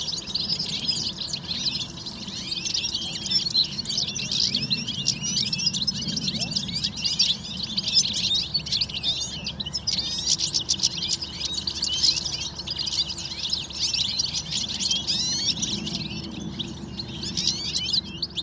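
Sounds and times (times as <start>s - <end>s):
large winter flock of goldfinches and serins twittering: 0.0s - 18.4s
low murmur of wind: 0.0s - 18.4s.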